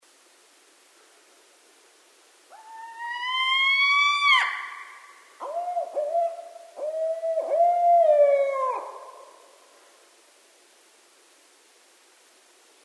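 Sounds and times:
barred owl hooting: 0:02.5 - 0:09.6.

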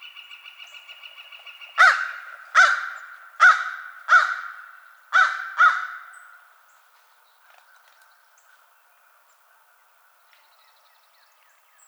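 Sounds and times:
American crow giving harsh caws: 0:01.8 - 0:06.5.

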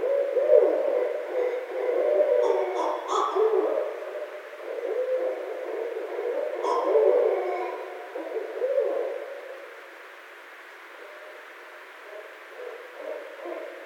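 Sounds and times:
barred owl hooting: 0:00.0 - 0:09.6, 0:10.9 - 0:13.8
barred owl squeals: 0:06.6 - 0:07.8.

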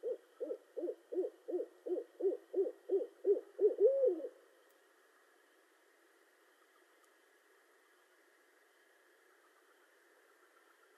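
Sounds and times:
barred owl hooting: 0:00.0 - 0:04.4.

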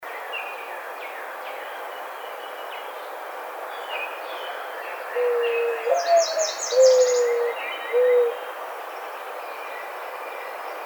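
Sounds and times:
mourning dove cooing: 0:05.2 - 0:08.5.

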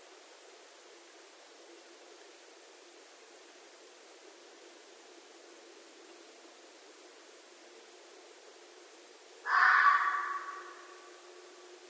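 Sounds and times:
red fox making hoarse raspy call at night: 0:09.5 - 0:11.1.

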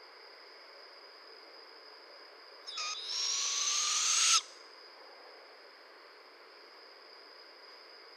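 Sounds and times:
barred owl rasp and hissing screech: 0:02.7 - 0:04.6.

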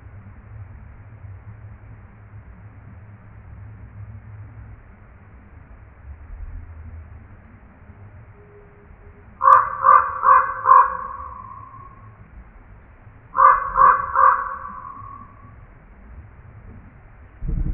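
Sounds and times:
common raven giving hoarse ringing croaks: 0:09.4 - 0:12.2, 0:13.4 - 0:15.6.

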